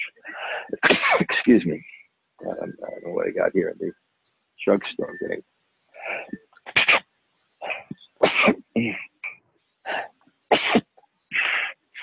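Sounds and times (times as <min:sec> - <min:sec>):
person with hay fever sneezing: 0:00.8 - 0:01.4, 0:06.0 - 0:09.1, 0:09.9 - 0:12.0
speech: 0:01.5 - 0:04.0, 0:04.6 - 0:05.5, 0:08.4 - 0:09.1.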